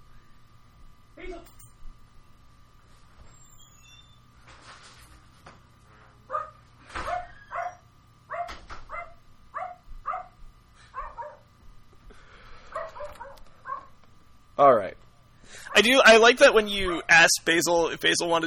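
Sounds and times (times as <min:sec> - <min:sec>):
low hum: 0:00.0 - 0:18.4
dog barking: 0:06.3 - 0:11.5, 0:12.7 - 0:13.9
speech: 0:14.6 - 0:15.0, 0:15.8 - 0:18.4.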